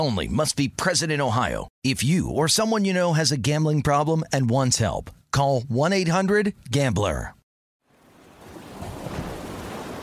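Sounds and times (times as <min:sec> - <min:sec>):
speech: 0:00.0 - 0:07.4
surf breaking at a beach in Tulum: 0:07.9 - 0:10.0.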